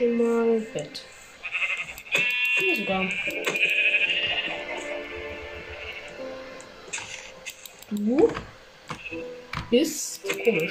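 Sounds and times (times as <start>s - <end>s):
speech: 0.0s - 1.2s, 2.8s - 3.8s, 9.7s - 10.6s
sheep bleating in a wavering chorus: 1.4s - 6.6s.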